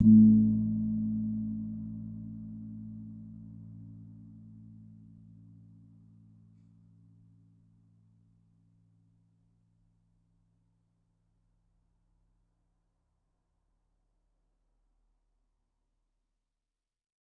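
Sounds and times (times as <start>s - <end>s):
kempul gong of a gamelan: 0.0s - 5.7s.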